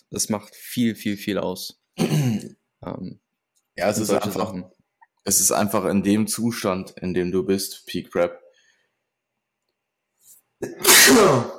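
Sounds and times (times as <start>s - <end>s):
speech: 0.1s - 3.2s, 3.8s - 8.4s, 10.6s - 11.5s
person sneezing: 10.6s - 11.5s.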